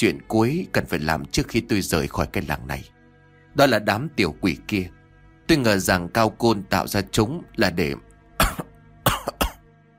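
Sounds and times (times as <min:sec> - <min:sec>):
speech: 0:00.0 - 0:03.0, 0:03.6 - 0:08.1
old teacher coughing: 0:08.4 - 0:09.7.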